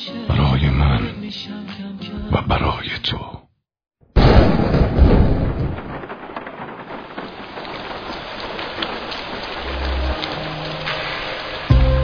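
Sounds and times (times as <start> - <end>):
speech: 0.1 - 3.4
steady rain falling: 4.7 - 12.0.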